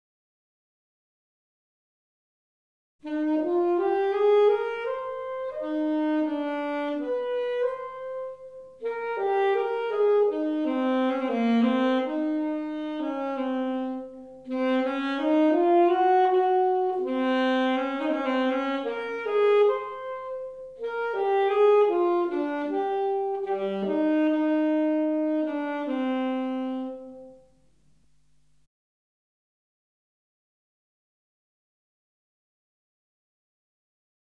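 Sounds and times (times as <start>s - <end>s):
alto saxophone: 3.0s - 28.7s.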